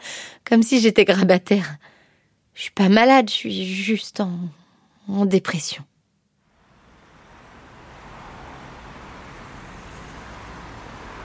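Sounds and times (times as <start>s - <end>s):
speech: 0.5s - 2.0s, 2.6s - 5.9s
road traffic rumble at a bus stop in an icy wind: 6.4s - 11.2s.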